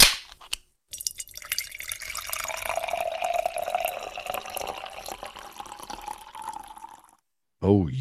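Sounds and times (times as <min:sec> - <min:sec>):
sharp pop of a beer being opened: 0:00.0 - 0:00.4
beer pouring and fizzing into a glass: 0:00.9 - 0:07.2
speech: 0:07.6 - 0:07.9.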